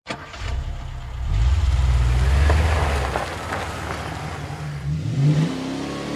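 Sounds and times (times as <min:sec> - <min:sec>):
brand new blue Mustang V6 engine revving on winding high desert roads: 0:00.3 - 0:06.1.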